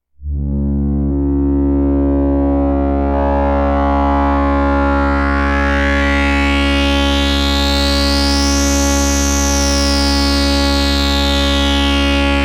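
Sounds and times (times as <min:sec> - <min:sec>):
cmosed MS20 filter sound: 0:00.2 - 0:12.4.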